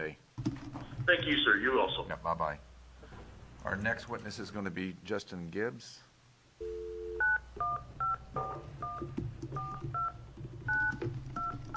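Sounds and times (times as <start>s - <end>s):
speech: 0.0s - 0.2s, 1.1s - 2.7s, 3.6s - 6.8s
low hum: 0.0s - 11.7s
telephone dial tone: 6.6s - 7.4s
telephone keypad dual-tone beeps: 6.6s - 11.7s.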